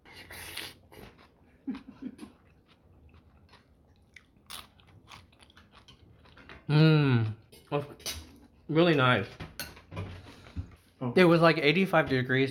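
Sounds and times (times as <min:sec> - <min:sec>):
crunchy biting and chewing of a broken-off piece of food at a meal of pozole with lime: 0:00.3 - 0:06.4
speech: 0:08.7 - 0:09.4, 0:11.1 - 0:12.5.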